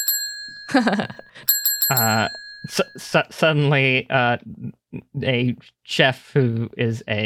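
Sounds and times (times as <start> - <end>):
counter service bell pushed repeatedly: 0.0 - 3.2
speech: 0.7 - 7.2.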